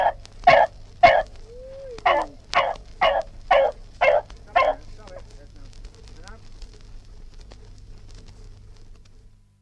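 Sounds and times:
dog barking harshly: 0:00.0 - 0:01.4, 0:02.0 - 0:04.9.

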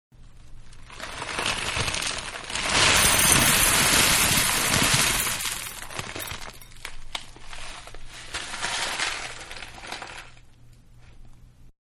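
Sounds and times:
cereal pouring from a bag into a big bowl: 0:00.9 - 0:06.7, 0:08.1 - 0:10.4
cereal bag rustling: 0:02.6 - 0:06.8.

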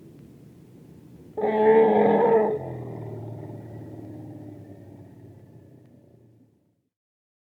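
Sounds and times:
Asian elephant low rumble: 0:01.1 - 0:06.6
Asian elephant trumpeting: 0:01.4 - 0:03.9.

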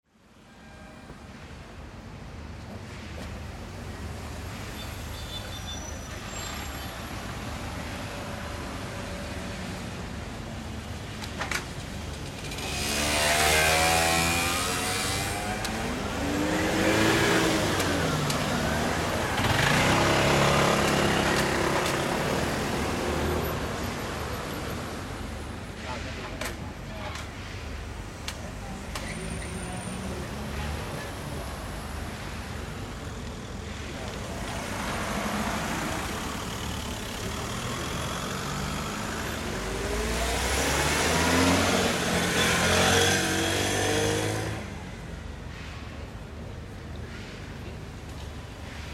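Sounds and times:
cars at a town traffic junction in Spain: 0:00.2 - 0:48.9
motorcycles at a town traffic junction in Spain: 0:10.8 - 0:27.5, 0:28.4 - 0:48.9
mopeds at a town traffic junction in Spain: 0:12.3 - 0:24.8, 0:33.8 - 0:44.9.

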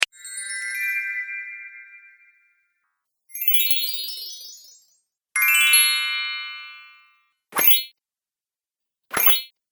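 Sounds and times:
fairy magic sparkle sound effect: 0:00.0 - 0:02.5, 0:03.3 - 0:07.9.

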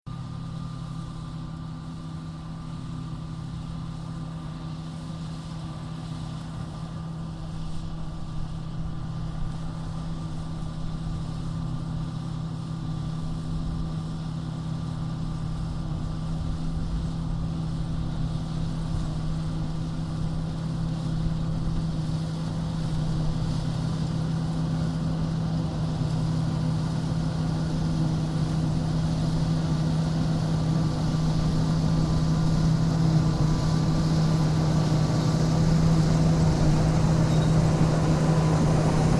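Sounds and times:
combine harvester passing by slowly while harvesting: 0:00.1 - 0:39.1.

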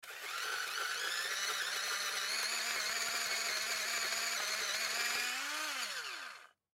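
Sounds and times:
small electric pencil sharpener running choppy in an office: 0:00.0 - 0:06.6.

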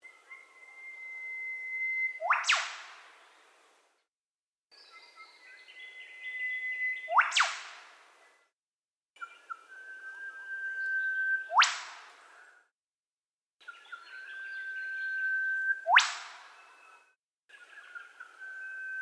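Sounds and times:
Australian eastern whipbird whistles ending in whip-crack snaps: 0:00.1 - 0:03.2, 0:05.5 - 0:08.1, 0:09.2 - 0:12.6, 0:13.6 - 0:19.0.

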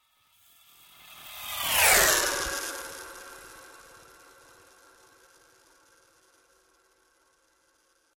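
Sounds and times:
sci fi spacecraft passing: 0:00.8 - 0:06.0.

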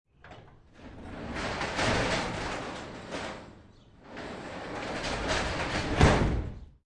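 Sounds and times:
garage door opening and closing: 0:00.1 - 0:06.8.

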